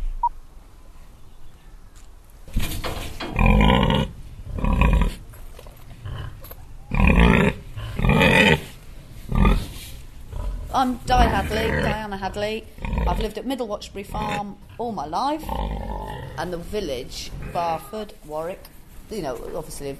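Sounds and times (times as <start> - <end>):
pig grunting on a farm: 3.3 - 5.3, 6.0 - 13.4, 14.1 - 16.6
speech: 10.8 - 15.8, 16.4 - 19.9.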